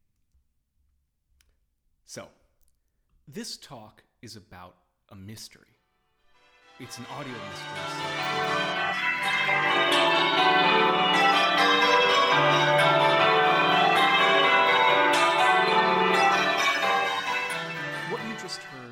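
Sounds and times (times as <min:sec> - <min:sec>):
speech: 0:02.1 - 0:02.4, 0:03.3 - 0:05.7, 0:06.8 - 0:10.9
church bells pealing in English change ringing: 0:06.8 - 0:18.9.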